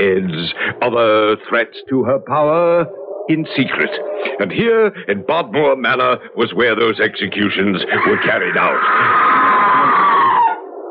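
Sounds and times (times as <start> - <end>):
speech: 0.0 - 10.0
person screaming: 8.0 - 10.6.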